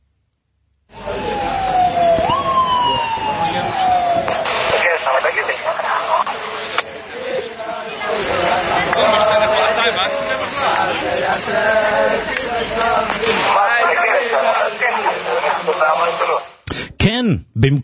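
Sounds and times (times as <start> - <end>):
falling siren-like tone: 0.9 - 4.7
crowd singing while dancing in the street: 4.4 - 16.5.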